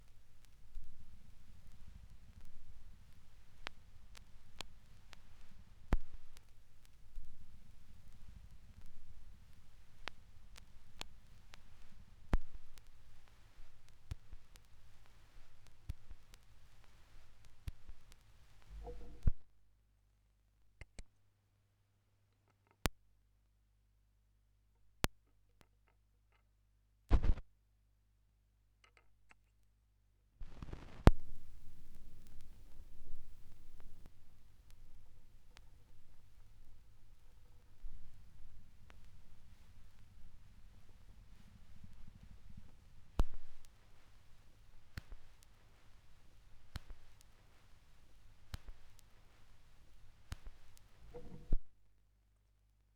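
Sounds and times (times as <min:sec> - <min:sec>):
vinyl record noise from a vinyl rip: 0:00.0 - 0:19.5, 0:27.1 - 0:27.5, 0:30.4 - 0:51.8.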